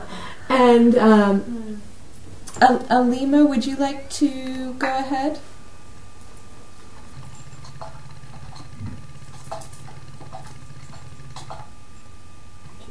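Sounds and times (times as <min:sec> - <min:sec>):
low hum: 0:00.0 - 0:12.8
speech: 0:00.6 - 0:01.9, 0:02.6 - 0:05.5
keys clicking as a person types a message on a keyboard: 0:07.0 - 0:11.8.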